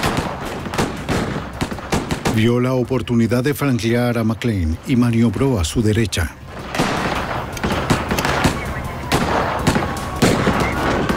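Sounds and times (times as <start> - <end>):
gunfire from a shootout between police and a gunman: 0.0 - 3.2, 6.4 - 11.1
continuous noise: 0.0 - 11.1
speech: 2.4 - 6.4.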